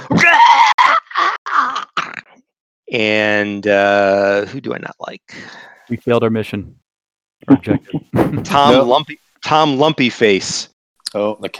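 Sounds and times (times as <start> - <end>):
person screaming a blood-curdling scream: 0.0 - 2.2
speech: 2.9 - 6.8, 7.4 - 11.5
laughter: 7.5 - 8.9.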